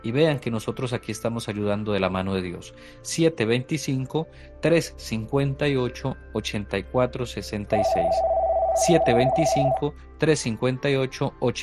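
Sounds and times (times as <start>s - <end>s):
speech: 0.0s - 11.6s
telephone ringing with an incoming call on a call-in line: 7.8s - 9.8s.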